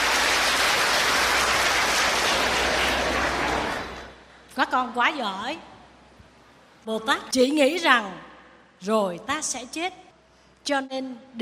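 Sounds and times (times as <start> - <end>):
audience applause at a Buddhist teaching session: 0.0 - 4.2
speech: 4.7 - 5.7, 6.8 - 10.0, 10.6 - 11.4.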